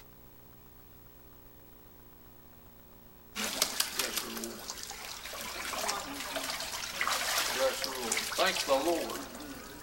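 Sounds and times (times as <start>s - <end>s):
water splashing as a woman is lowered and lifted during baptism by immersion: 3.4s - 9.8s
speech: 8.5s - 9.2s.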